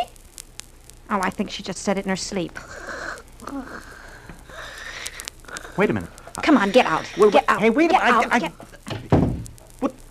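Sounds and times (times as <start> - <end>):
speech: 1.1 - 4.0, 5.8 - 8.7
voice murmuring: 2.6 - 8.9
bedroom door shutting with a dull thud: 8.9 - 9.6.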